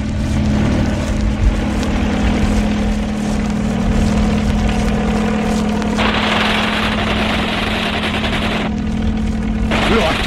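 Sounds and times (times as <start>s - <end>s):
helicopter rotor chopping low overhead: 0.0s - 10.2s
harsh rushing blast: 6.0s - 8.8s, 9.6s - 10.2s.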